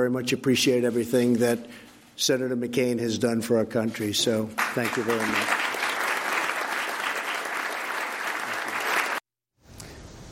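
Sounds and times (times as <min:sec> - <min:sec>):
speech: 0:00.0 - 0:05.6
large crowd applauding in a room: 0:04.6 - 0:09.2.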